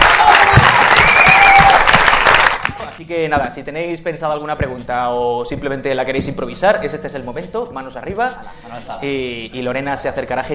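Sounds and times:
audience applause at a live on-stage event: 0.0 - 3.0
speech: 3.1 - 10.5.

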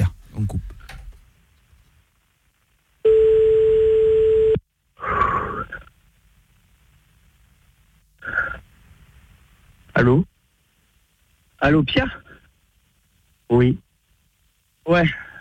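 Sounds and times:
speech: 0.4 - 0.7, 10.0 - 10.3, 11.6 - 12.2, 13.5 - 13.8, 14.9 - 15.2
telephone ringing tone while placing a call: 3.0 - 4.6.

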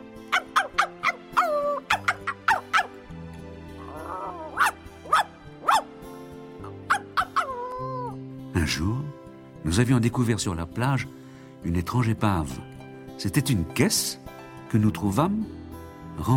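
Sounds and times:
dog barking furiously around a well on an island: 0.3 - 3.0, 3.8 - 6.0, 6.6 - 7.9
speech: 8.6 - 15.6, 16.2 - 16.3.

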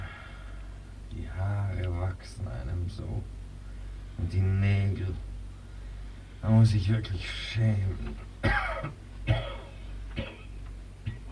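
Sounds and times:
faint low hum: 0.0 - 11.2
speech: 1.4 - 3.4, 4.2 - 5.3, 6.4 - 9.5
man coughing: 8.4 - 11.2.

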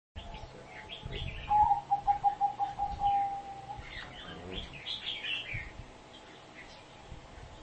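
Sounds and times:
small birds chirping: 0.2 - 7.6
spotted dove cooing: 0.6 - 5.2.

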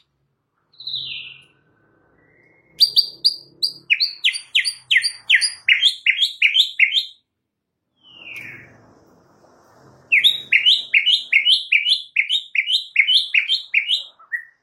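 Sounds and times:
white-rumped shama singing whistles: 0.7 - 7.2, 10.1 - 14.6.

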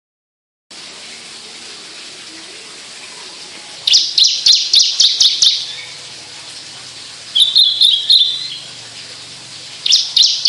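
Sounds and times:
Javan bush lark song in skyward song flight: 3.9 - 6.0, 7.4 - 8.7, 9.8 - 10.4.

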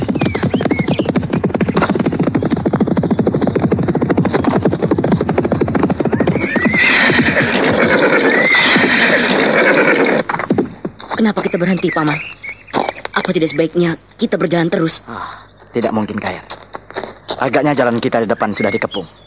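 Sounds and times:
hoofbeats of horses galloping as riders spur them on: 0.0 - 13.4
horses neighing loudly: 3.8 - 10.3
speech: 11.2 - 12.4, 13.3 - 16.6, 17.4 - 19.2.

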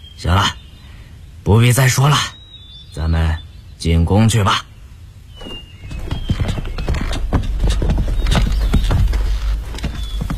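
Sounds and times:
speech: 0.2 - 0.6, 1.4 - 4.7
horse hooves clip-clopping behind a sedan chair: 5.4 - 10.3.

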